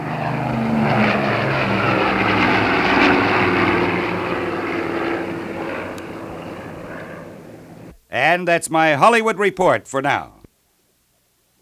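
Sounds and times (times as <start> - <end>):
propeller airplane engine roaring while taking off: 0.0 - 8.0
speech: 8.4 - 10.4.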